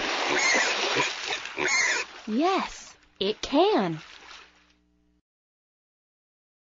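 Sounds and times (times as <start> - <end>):
pig oinking, snorting and grunting: 0.3 - 2.1
speech: 2.3 - 4.1.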